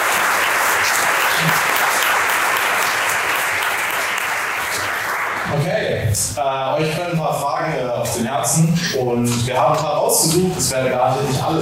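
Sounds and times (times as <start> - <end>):
audience applause: 0.0 - 5.6
speech: 1.4 - 1.7, 5.6 - 11.6.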